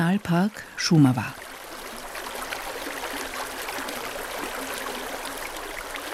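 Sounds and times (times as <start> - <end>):
small brook babbling at river source: 0.0 - 6.1
speech: 0.2 - 1.4.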